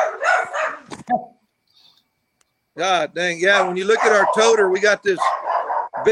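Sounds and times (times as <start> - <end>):
dogs barking and yipping: 0.0 - 0.9, 3.4 - 6.0
speech: 2.8 - 5.4.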